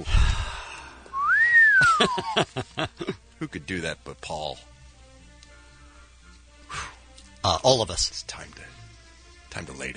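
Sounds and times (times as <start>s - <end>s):
person whistling a single gliding note: 1.1s - 2.2s
laughter: 1.8s - 3.2s
speech: 2.0s - 4.7s, 7.4s - 8.8s, 9.5s - 9.9s.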